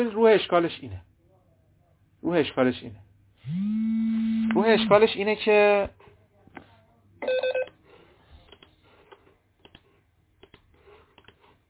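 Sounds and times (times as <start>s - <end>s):
speech: 0.0s - 1.1s, 2.2s - 6.0s
electronic telephone ring from an incoming call: 7.2s - 7.7s.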